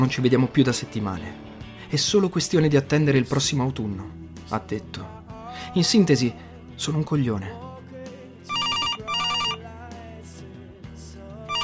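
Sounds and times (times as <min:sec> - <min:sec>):
speech: 0:00.0 - 0:07.6
telephone ringing with electronic trills: 0:08.5 - 0:09.6.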